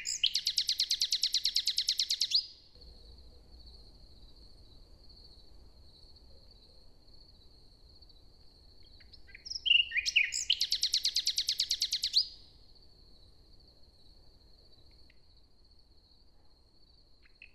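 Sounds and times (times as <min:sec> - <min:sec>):
common nightingale singing morning song in a forest near Hoscheid, Luxembourg: 0:00.0 - 0:02.7, 0:08.8 - 0:12.5, 0:17.2 - 0:17.5.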